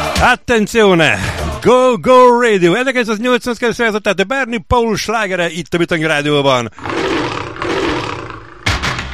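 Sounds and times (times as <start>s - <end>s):
speech: 0.2s - 7.2s
lion roaring and grunting: 6.8s - 8.9s.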